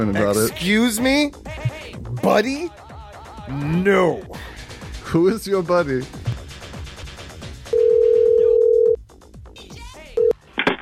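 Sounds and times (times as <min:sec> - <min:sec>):
speech: 0:00.0 - 0:02.8, 0:03.5 - 0:04.5, 0:05.1 - 0:06.2
telephone ringback tone on a call to a suit shop: 0:07.7 - 0:09.0.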